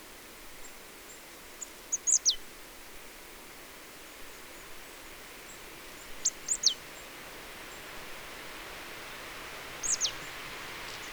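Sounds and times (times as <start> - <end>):
quiet hissing background: 0.0 - 11.1
Marsh tit Poecile palustris calling with high ticks and sharp chips: 1.9 - 2.4, 6.2 - 6.8, 9.8 - 10.3.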